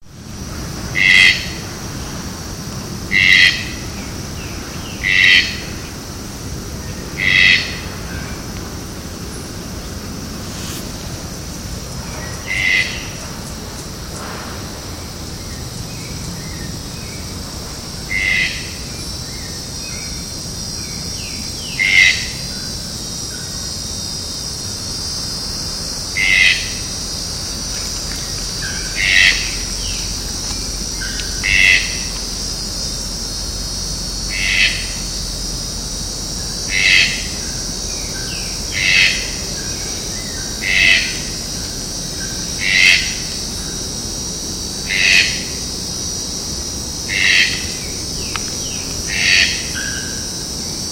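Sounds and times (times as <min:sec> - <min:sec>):
Ramphastos dicolorus calling: 0:01.0 - 0:01.6, 0:03.1 - 0:03.8, 0:04.4 - 0:05.9, 0:06.8 - 0:08.4, 0:12.2 - 0:13.2, 0:18.1 - 0:18.8, 0:21.6 - 0:22.4, 0:26.2 - 0:27.0, 0:27.6 - 0:32.6, 0:34.2 - 0:35.2, 0:36.5 - 0:41.5, 0:42.5 - 0:43.7, 0:44.8 - 0:45.6, 0:47.0 - 0:50.2.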